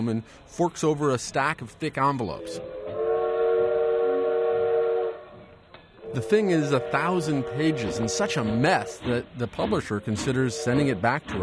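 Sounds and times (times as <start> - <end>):
speech: 0.0 - 2.7, 6.1 - 11.4
train whistle blast: 2.4 - 5.4, 6.0 - 8.9.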